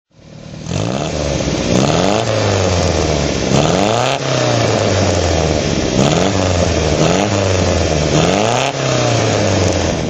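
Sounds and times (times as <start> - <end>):
MG MGA 1600 engine throttle: 0.1 - 10.0.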